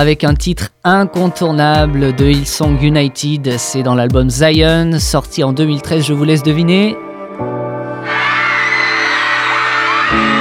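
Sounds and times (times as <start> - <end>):
speech: 0.0 - 8.2
sustained music chords: 0.0 - 10.3
concert crowd of fans cheering and whooping: 7.9 - 10.3.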